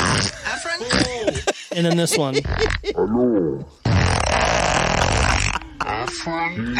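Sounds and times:
long loud raspy fart: 0.0s - 1.1s, 2.5s - 6.0s
laughter: 0.2s - 3.3s
speech: 1.8s - 3.9s, 6.1s - 6.7s.

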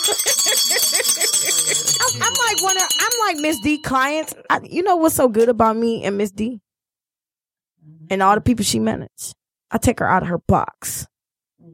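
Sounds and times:
bell ringing: 0.0s - 4.6s
voices chattering and laughing: 1.3s - 3.2s
speech: 3.3s - 6.7s, 8.1s - 11.7s.

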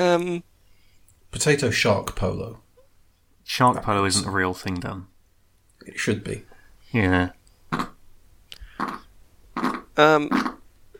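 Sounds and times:
speech: 0.0s - 0.5s, 1.3s - 2.6s, 3.5s - 5.1s, 5.8s - 7.9s, 10.0s - 10.5s
rasping fart noises made with the mouth: 7.7s - 8.0s, 8.7s - 10.7s.

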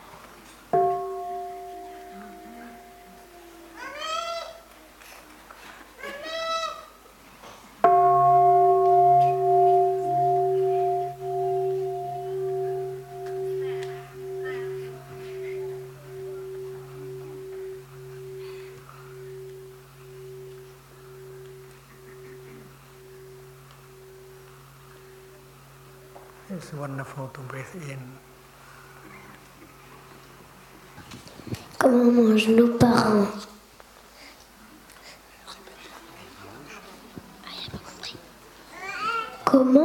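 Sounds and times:
deep bell struck and ringing with a long humming tone: 0.8s - 4.0s, 7.8s - 31.0s
speech: 26.6s - 28.3s, 32.1s - 33.5s.

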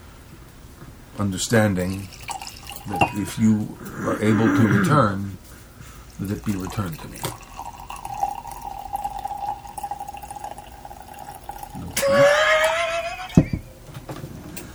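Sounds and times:
steady hum: 0.0s - 14.7s
speech: 1.2s - 5.4s, 6.2s - 7.4s
wine pouring into a glass: 1.4s - 4.7s, 6.2s - 13.6s.

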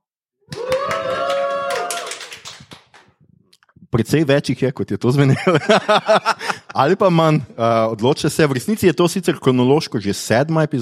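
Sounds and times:
live audience whooping cheer at Vodnikova domačija in Ljubljana: 0.5s - 2.5s
live audience clapping at Vodnikova domačija in Ljubljana: 0.5s - 3.2s
speech: 3.9s - 10.7s
laughter: 5.3s - 7.0s.

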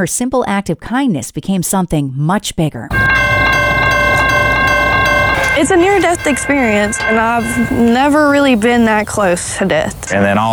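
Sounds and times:
speech: 0.0s - 3.1s, 5.6s - 10.5s
train horn blaring: 2.9s - 10.5s.

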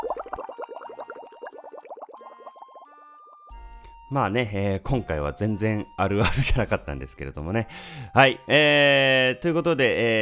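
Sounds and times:
underwater bubbling and gurgling: 0.0s - 3.0s
speech: 4.1s - 10.2s.

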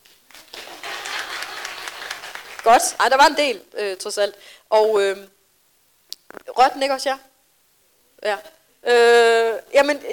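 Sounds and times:
audience clapping: 0.0s - 3.0s
speech: 2.6s - 5.4s, 6.6s - 7.3s, 8.2s - 10.1s.

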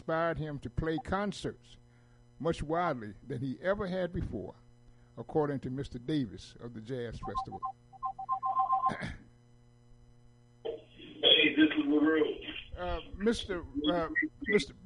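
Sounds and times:
speech: 0.1s - 1.8s, 2.4s - 4.6s, 5.2s - 7.8s, 8.9s - 9.2s, 11.7s - 14.8s
phone ringing with an electronic tone: 7.2s - 9.0s.

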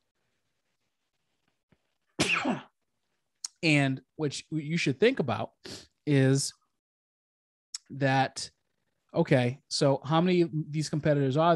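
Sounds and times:
loud sharp sneeze: 2.2s - 2.7s
speech: 2.4s - 2.7s, 3.6s - 6.6s, 7.9s - 8.6s, 9.2s - 11.5s.

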